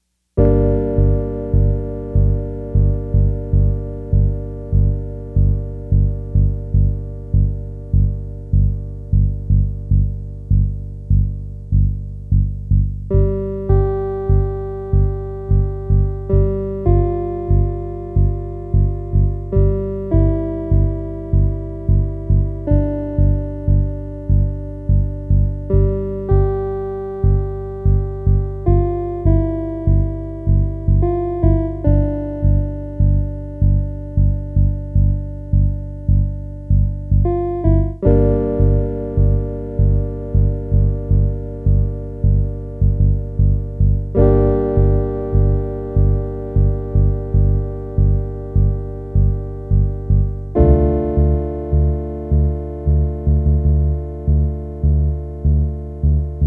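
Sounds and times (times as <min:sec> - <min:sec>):
Univox CP 110 electric piano: 0:00.4 - 0:56.4.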